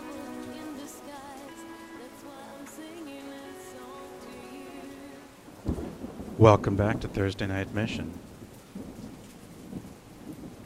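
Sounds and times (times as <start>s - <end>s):
steady dense thunderstorm rain: 0.0s - 10.6s
low thunder rumbling: 5.5s - 10.6s
speech: 6.4s - 8.3s.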